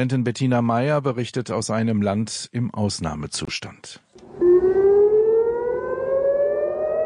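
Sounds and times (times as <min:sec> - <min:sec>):
speech: 0:00.0 - 0:04.0
air raid sirens wailing in Israel: 0:04.2 - 0:07.0.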